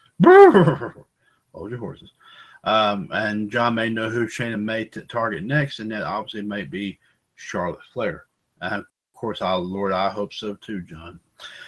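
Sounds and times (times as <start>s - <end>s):
horse whinnying: 0.2s - 1.0s
speech: 0.2s - 11.6s.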